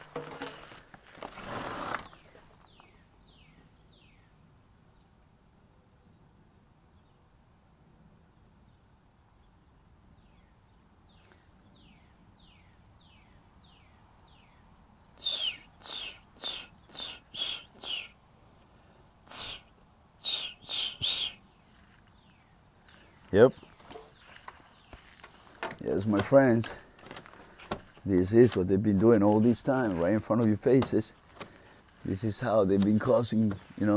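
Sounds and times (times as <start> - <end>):
bird calling outdoors in quick descending chirps: 2.0 - 5.2, 9.4 - 18.2, 19.3 - 33.9
speech: 23.4 - 23.6, 26.0 - 26.8, 28.0 - 31.2, 32.0 - 33.9.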